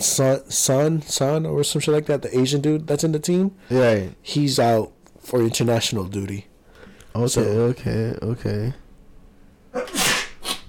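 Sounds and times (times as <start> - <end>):
speech: 0.0 - 6.5, 7.1 - 8.8
person sneezing: 9.7 - 10.6.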